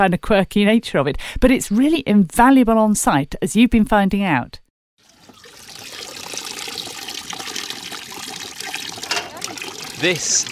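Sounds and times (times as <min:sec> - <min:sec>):
speech: 0:00.0 - 0:04.6, 0:10.0 - 0:10.5
water cascading down from bucket to bucket: 0:05.0 - 0:10.5.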